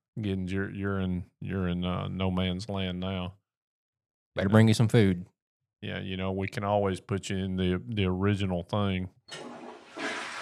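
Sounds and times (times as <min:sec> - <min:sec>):
speech: 0:00.2 - 0:03.4, 0:04.4 - 0:09.6
toilet flushing: 0:09.3 - 0:10.4.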